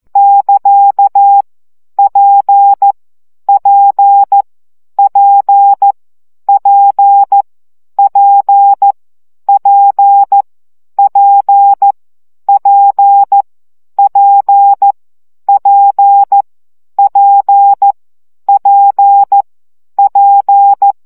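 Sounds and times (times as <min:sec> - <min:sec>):
CW morse code practice at 12 baud: 0:00.2 - 0:01.4, 0:02.0 - 0:04.4, 0:05.0 - 0:07.4, 0:08.0 - 0:10.4, 0:11.0 - 0:13.4, 0:14.0 - 0:16.4, 0:17.0 - 0:19.4, 0:20.0 - 0:21.0.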